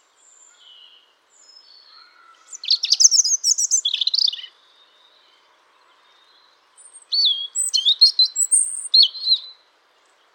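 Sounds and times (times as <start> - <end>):
European robin Erithacus rubecula singing sharp high notes and trills: 0.2 - 9.6.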